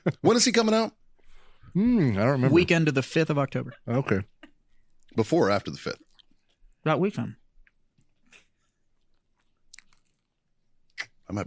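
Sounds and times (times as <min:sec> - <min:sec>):
speech: 0:00.0 - 0:01.0, 0:01.8 - 0:04.3, 0:05.1 - 0:06.1, 0:06.8 - 0:07.4, 0:11.3 - 0:11.4
wet chewing with crunchy bites: 0:04.2 - 0:06.8, 0:07.5 - 0:11.2.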